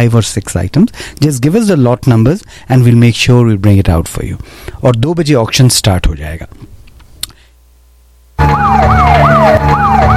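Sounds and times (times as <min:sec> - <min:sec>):
speech: 0:00.0 - 0:06.7, 0:08.4 - 0:10.1
police car siren wailing: 0:08.4 - 0:10.1.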